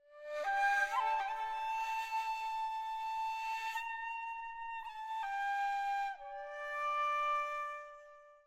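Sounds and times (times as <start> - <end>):
prop flute: 0.0 - 8.4.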